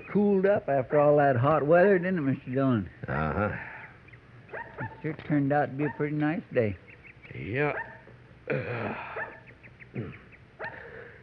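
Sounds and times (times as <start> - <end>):
speech: 0.1 - 3.7, 4.8 - 7.9, 8.5 - 9.2, 10.0 - 10.2
small playful pup yapping and whining in the street: 4.5 - 5.0, 7.7 - 8.1.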